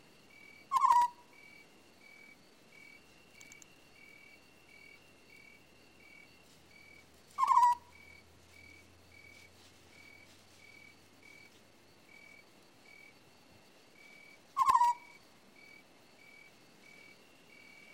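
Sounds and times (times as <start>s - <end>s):
quiet background hiss: 0.0s - 17.9s
African scops owl calling: 0.7s - 1.3s, 7.4s - 8.0s, 14.2s - 15.2s.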